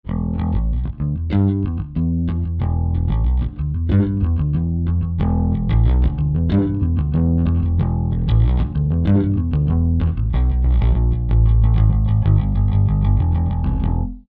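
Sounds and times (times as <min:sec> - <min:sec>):
bass glow tone: 0:00.0 - 0:14.2.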